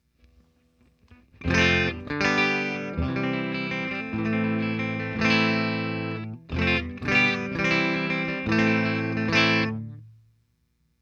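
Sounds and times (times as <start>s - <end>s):
clean guitar through Fender Twin Reverb amplifier: 1.4s - 10.2s.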